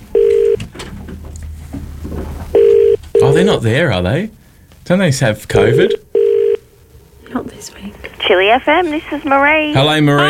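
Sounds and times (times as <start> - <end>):
low noise: 0.0 - 10.2
telephone beep as a call is dialled: 0.1 - 0.6, 2.6 - 3.5, 5.6 - 6.6
speech: 3.4 - 6.0, 7.4 - 10.2.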